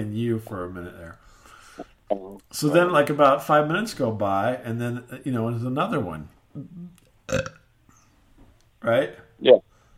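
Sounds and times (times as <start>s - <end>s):
speech: 0.0s - 7.6s, 8.8s - 9.7s
voice imitating a short loud burp: 6.6s - 7.7s.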